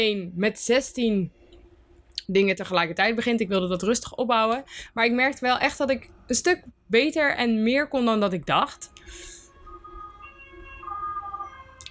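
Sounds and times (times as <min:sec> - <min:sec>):
speech: 0:00.0 - 0:01.4, 0:02.3 - 0:09.3
ambulance siren wailing on a road beside a home: 0:09.0 - 0:11.8.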